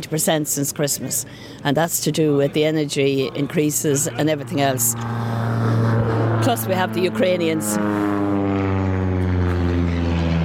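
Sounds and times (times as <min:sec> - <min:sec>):
speech: 0:00.0 - 0:08.4
small aeroplane flying low overhead: 0:02.8 - 0:10.4.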